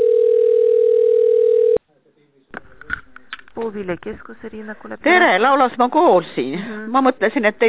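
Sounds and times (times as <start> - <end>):
telephone line tone while on hold: 0.0 - 1.8
speech: 3.6 - 7.6.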